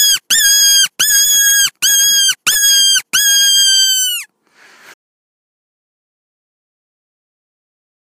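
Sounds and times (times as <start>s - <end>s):
fox yelping: 0.0s - 4.3s
soft breathy sound: 4.4s - 5.0s.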